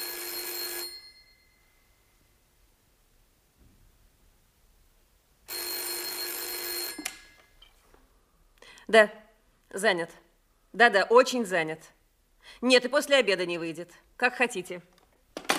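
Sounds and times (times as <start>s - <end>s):
old-style telephone bell ringing loudly: 0.0s - 1.8s, 5.5s - 7.4s
speech: 8.9s - 15.0s.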